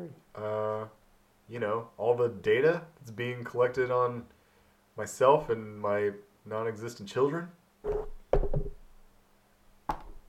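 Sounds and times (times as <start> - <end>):
speech: 0.0 - 4.4, 5.0 - 8.1
microphone being bumped: 7.8 - 8.8.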